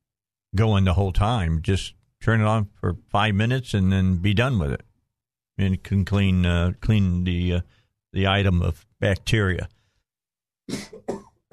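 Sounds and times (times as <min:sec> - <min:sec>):
speech: 0:00.6 - 0:04.9, 0:05.6 - 0:09.8, 0:10.7 - 0:11.1
person coughing: 0:10.7 - 0:11.5.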